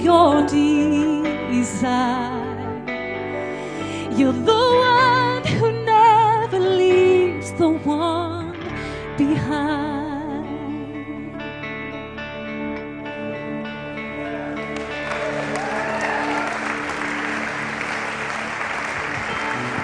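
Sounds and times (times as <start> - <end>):
speech: 0.0 - 2.6, 4.2 - 5.8
sustained tones of worship music: 0.0 - 19.8
audience clapping in praise of God: 14.3 - 19.8.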